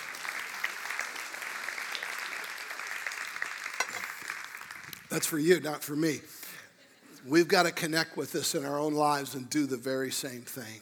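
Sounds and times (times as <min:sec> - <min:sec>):
audience clapping: 0:00.0 - 0:05.5
speech: 0:05.2 - 0:06.4, 0:07.2 - 0:10.7.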